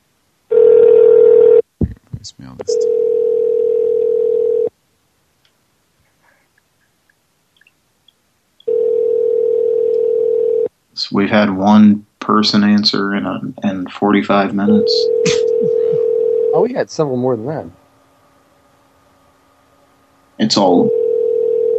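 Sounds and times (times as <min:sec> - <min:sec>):
telephone call ringing: 0:00.5 - 0:01.6, 0:02.7 - 0:04.7, 0:08.7 - 0:10.7, 0:14.8 - 0:16.6, 0:20.8 - 0:21.7
speech: 0:02.2 - 0:03.6, 0:11.2 - 0:15.8, 0:16.6 - 0:17.8, 0:20.4 - 0:20.9
telephone dial tone: 0:02.8 - 0:04.7, 0:08.7 - 0:10.7, 0:15.1 - 0:16.5, 0:20.9 - 0:21.7.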